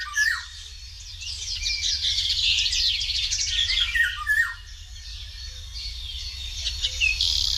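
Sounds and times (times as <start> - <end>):
Eurasian golden oriole fluty song: 0.0 - 7.5
busy chorus of other birds' chirps and harsh calls: 0.0 - 7.5.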